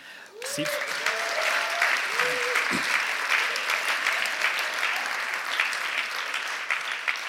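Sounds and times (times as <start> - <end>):
audience whoops and cheers: 0.3 - 5.4
large audience applause: 0.3 - 7.2.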